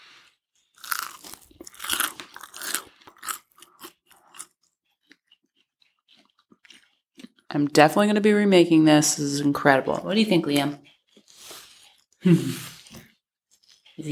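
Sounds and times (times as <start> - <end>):
chewing and mouth sounds: 0.1 - 7.9, 9.9 - 14.0
biting crunchy crusty focaccia bread: 0.6 - 7.5, 10.8 - 14.0
speech: 7.5 - 10.9, 12.2 - 12.7.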